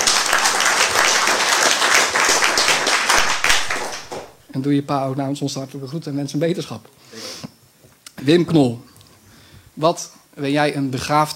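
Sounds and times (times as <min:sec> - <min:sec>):
audience applause at an installation ceremony in Oudewater: 0:00.0 - 0:04.4
speech: 0:04.6 - 0:07.2, 0:08.2 - 0:08.9, 0:09.8 - 0:11.3.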